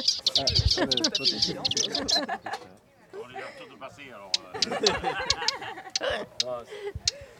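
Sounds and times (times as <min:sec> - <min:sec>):
subalpine warbler chattering call notes: 0:00.0 - 0:02.3, 0:04.2 - 0:06.6
speech: 0:00.0 - 0:02.8, 0:03.4 - 0:07.3
people talking quietly: 0:00.0 - 0:07.3
laughter: 0:00.4 - 0:03.8, 0:04.4 - 0:07.3.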